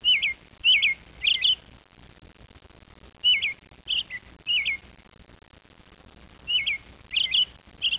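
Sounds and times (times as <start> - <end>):
bird calls of short high curling chirps: 0.0 - 1.7, 3.2 - 4.9, 6.4 - 7.9
faint low background noise: 0.0 - 7.9.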